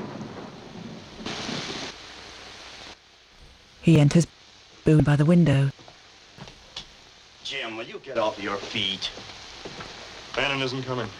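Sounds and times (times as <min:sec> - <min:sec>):
heavy rain falling: 0:00.0 - 0:04.3, 0:07.4 - 0:11.1
speech: 0:03.9 - 0:05.9, 0:07.5 - 0:09.3, 0:10.4 - 0:11.1.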